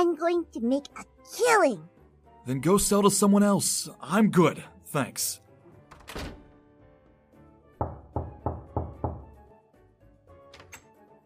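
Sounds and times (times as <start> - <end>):
speech: 0.0 - 5.4, 6.1 - 6.4
door shutting with a solid thud: 5.9 - 6.6
firm knocks on a door: 7.8 - 9.4.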